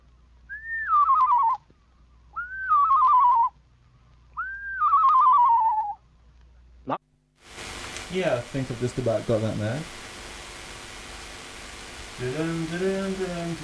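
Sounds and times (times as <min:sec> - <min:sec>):
person whistling imitation of screech owl song: 0:00.5 - 0:01.6, 0:02.3 - 0:03.5, 0:04.4 - 0:06.0
speech: 0:08.1 - 0:10.0, 0:12.2 - 0:13.6.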